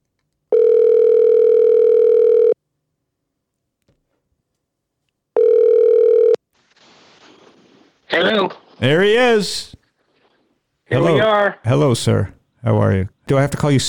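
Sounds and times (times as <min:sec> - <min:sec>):
telephone ringing tone on the line as a phone call is placed: 0:00.5 - 0:02.6, 0:05.4 - 0:06.4
speech: 0:08.2 - 0:09.8, 0:10.9 - 0:13.8.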